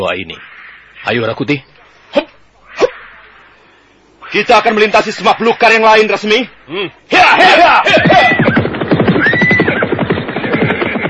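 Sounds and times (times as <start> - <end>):
speech: 0.0 - 2.3, 4.3 - 8.4
hoofbeats of horses galloping through tall grass: 7.9 - 11.0
horses neighing: 7.9 - 11.0.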